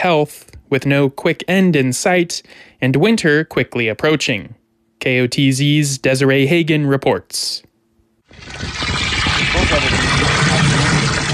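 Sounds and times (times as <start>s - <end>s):
speech: 0.0s - 7.7s, 8.3s - 10.4s
water gushing into a 5-gallon bucket at a village water treatment plant: 8.3s - 11.3s.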